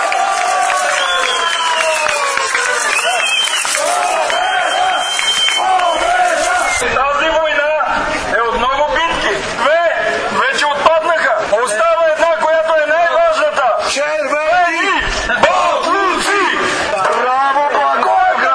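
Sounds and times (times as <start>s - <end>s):
protest crowd clapping: 0.0s - 6.8s
large outdoor protest crowd in Blagoevgrad Province Bulgaria chanting victory cries: 0.0s - 8.4s, 14.4s - 18.5s
excited voices: 0.0s - 18.5s.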